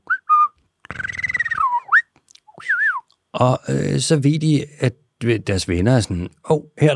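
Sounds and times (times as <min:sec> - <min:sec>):
dolphin signature whistles: 0:00.1 - 0:03.0
speech: 0:03.4 - 0:06.9.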